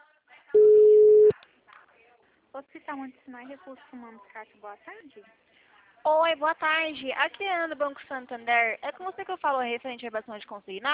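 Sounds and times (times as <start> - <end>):
telephone tone as a call is transferred: 0.6 - 1.4
speech: 2.6 - 10.9.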